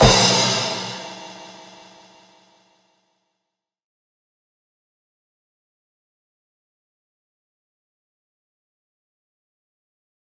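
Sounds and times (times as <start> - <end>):
extended crash: 0.0 - 2.0.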